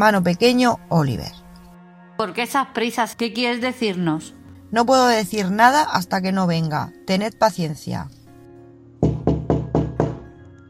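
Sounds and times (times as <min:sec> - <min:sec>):
speech: 0:00.0 - 0:01.4, 0:02.2 - 0:08.2
firm knocks on a door: 0:09.0 - 0:10.3.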